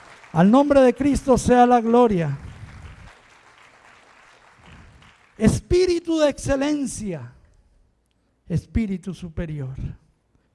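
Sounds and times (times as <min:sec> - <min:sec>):
audience applauding: 0:00.0 - 0:01.1, 0:02.0 - 0:05.5
speech: 0:00.3 - 0:02.5, 0:05.4 - 0:07.4, 0:08.5 - 0:10.0.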